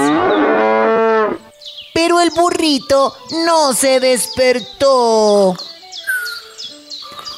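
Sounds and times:
cow mooing loudly: 0.0s - 1.5s
speech: 2.0s - 5.7s.

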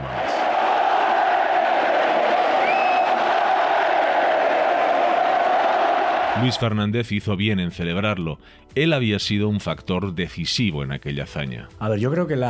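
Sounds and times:
huge stadium crowd roaring and chanting olé: 0.0s - 6.7s
shrill whistle: 2.4s - 3.2s
speech: 6.4s - 12.4s.

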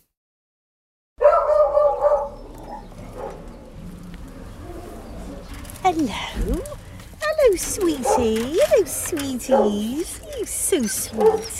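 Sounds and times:
beagle barking: 1.2s - 3.5s, 8.0s - 8.7s, 9.4s - 10.0s, 11.0s - 11.5s
speech: 5.9s - 6.8s, 7.4s - 11.5s.

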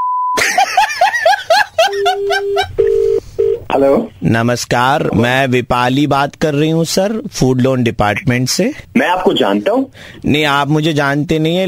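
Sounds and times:
brief tone: 0.0s - 0.4s
laughter: 0.4s - 2.8s
steady electronic phone tone: 1.9s - 3.7s
speech: 3.8s - 11.6s.

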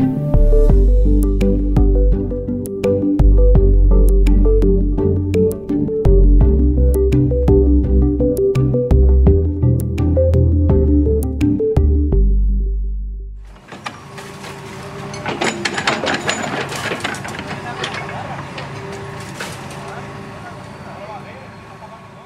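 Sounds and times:
music: 0.0s - 13.5s
crane rumbling and grinding while demolishing a shack: 13.4s - 22.2s
debris of a demolished shack crashing and clattering: 13.7s - 19.9s.

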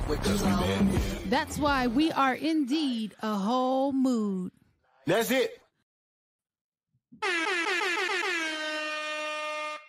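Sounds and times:
speech: 0.1s - 5.6s, 7.2s - 8.3s
loud blaring air horn blast: 7.2s - 9.8s.

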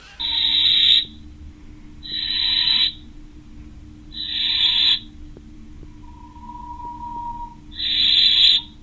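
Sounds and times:
low steady hum: 0.0s - 8.8s
little owl chick begging for food with harsh raspy hissing screeches: 0.2s - 1.2s, 2.0s - 3.0s, 4.2s - 5.0s, 6.0s - 8.8s.

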